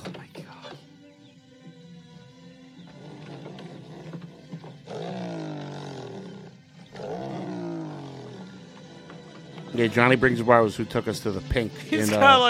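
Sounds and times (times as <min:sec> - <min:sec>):
lion roaring: 0:02.9 - 0:09.4
speech: 0:09.8 - 0:12.4.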